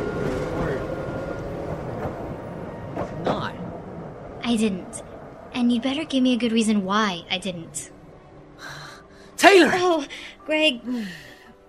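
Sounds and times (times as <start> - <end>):
train rumbling past with faint metallic whine: 0.0 - 9.1
speech: 4.5 - 7.9, 9.4 - 11.3.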